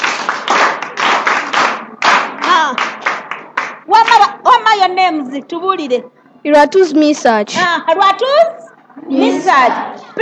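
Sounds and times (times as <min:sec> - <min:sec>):
audience clapping for a boy: 0:00.0 - 0:04.3
speech: 0:05.0 - 0:10.1.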